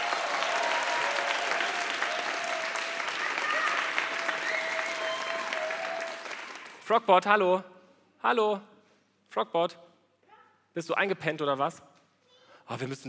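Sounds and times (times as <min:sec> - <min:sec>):
audience applause: 0:00.0 - 0:06.8
speech: 0:06.9 - 0:08.7, 0:09.3 - 0:09.8, 0:10.8 - 0:11.9, 0:12.7 - 0:13.0.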